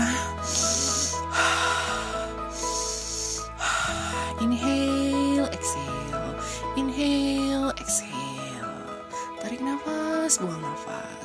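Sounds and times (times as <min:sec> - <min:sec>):
deep breaths in and out: 0:00.0 - 0:04.4
sustained musical background: 0:00.0 - 0:11.2.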